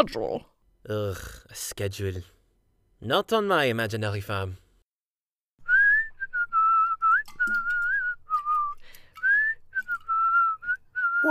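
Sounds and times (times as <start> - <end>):
speech: 0.0 - 2.4, 3.0 - 4.6
person whistling a lilting tune: 5.6 - 11.3.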